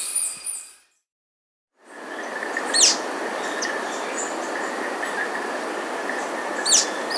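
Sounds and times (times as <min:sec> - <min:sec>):
Slaty Antwren Myrmotherula schisticolor calling: 0:01.9 - 0:07.1.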